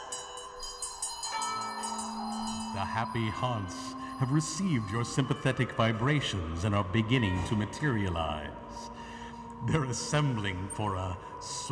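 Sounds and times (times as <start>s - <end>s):
bell ringing: 0.0s - 6.4s
speech: 2.8s - 9.0s, 9.6s - 11.7s.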